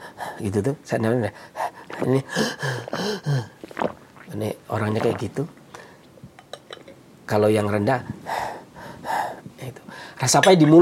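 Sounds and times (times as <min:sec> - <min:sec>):
speech: 0:00.4 - 0:03.6, 0:04.3 - 0:05.6, 0:07.3 - 0:08.4, 0:10.2 - 0:10.8
person imitating high-pitched panting breath: 0:01.5 - 0:03.6.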